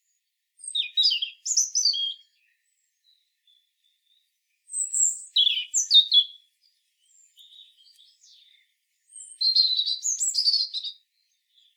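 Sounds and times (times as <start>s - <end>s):
European robin Erithacus rubecula singing: 0.6s - 11.7s.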